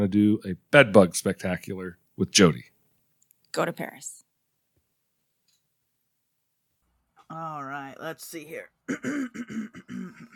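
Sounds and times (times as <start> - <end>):
speech: 0.0 - 2.7, 3.6 - 4.2, 7.3 - 10.3
person clearing throat: 8.9 - 10.3.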